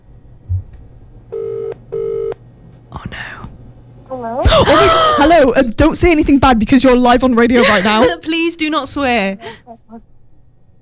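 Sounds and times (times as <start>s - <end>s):
faint low hum: 0.0s - 10.8s
telephone ringback tones: 1.4s - 2.4s
speech: 4.2s - 4.8s, 5.4s - 10.0s.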